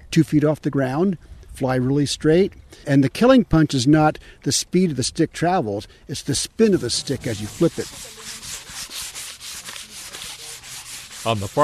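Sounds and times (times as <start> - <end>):
speech: 0.2 - 8.5, 11.2 - 11.6
sandpaper rubbing along a handmade wooden hunting bow: 6.4 - 11.6.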